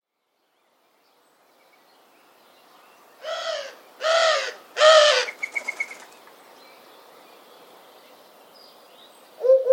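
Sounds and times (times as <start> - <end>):
bird cawing: 3.2 - 5.9.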